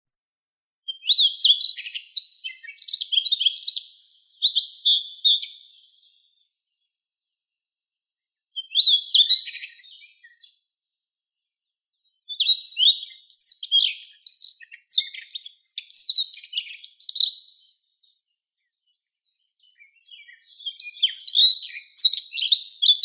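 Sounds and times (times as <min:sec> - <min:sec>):
Siberian rubythroat Luscinia calliope singing: 0:00.9 - 0:06.4, 0:08.6 - 0:10.5, 0:12.3 - 0:17.7, 0:19.6 - 0:23.0.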